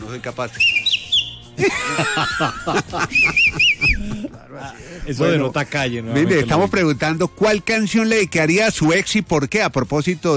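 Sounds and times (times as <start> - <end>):
speech: 0.1 - 0.9, 1.6 - 10.3
person whistling: 0.5 - 1.5, 3.0 - 4.1
light laughter: 1.6 - 5.1.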